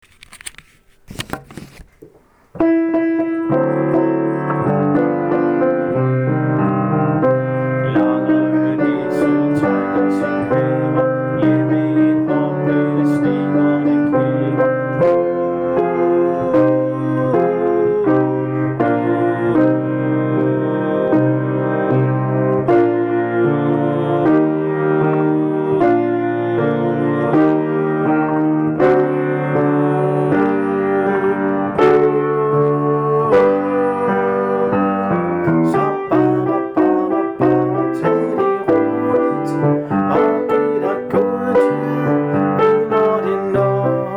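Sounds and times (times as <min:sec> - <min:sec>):
soprano singing: 0:02.6 - 0:44.1
accompaniment: 0:03.5 - 0:44.1.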